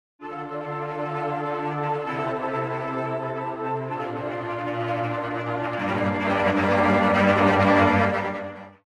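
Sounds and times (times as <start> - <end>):
traditional low ensemble playing random staccato: 0.3 - 8.6.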